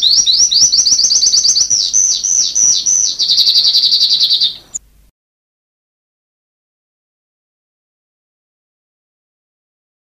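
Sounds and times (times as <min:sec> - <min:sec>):
sanma bird singing high thin chirps and stuttering trill: 0:00.0 - 0:04.8.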